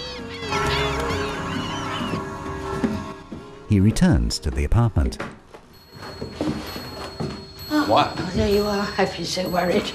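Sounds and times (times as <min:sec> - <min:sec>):
flock of gulls calling above a river: 0:00.0 - 0:02.8
speech: 0:03.7 - 0:05.4, 0:07.9 - 0:09.9.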